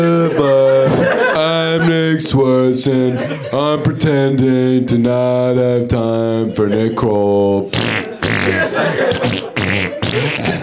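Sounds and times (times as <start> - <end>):
laughter: 0.0 - 5.0, 5.6 - 10.6
speech: 2.2 - 9.4
buzzy fart noises likely blown by a mouth in imitation: 7.7 - 10.6.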